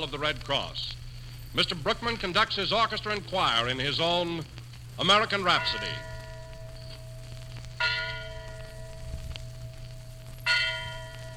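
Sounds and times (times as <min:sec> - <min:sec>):
speech: 0:00.0 - 0:06.1
low rumble: 0:00.0 - 0:11.3
Liberty Bell at Independence Hall in Philadelphia tolling: 0:05.4 - 0:11.3.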